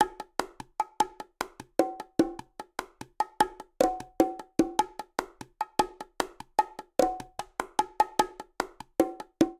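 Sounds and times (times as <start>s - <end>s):
Latin percussion bongo rhythm at 100 bpm: 0.0s - 9.5s.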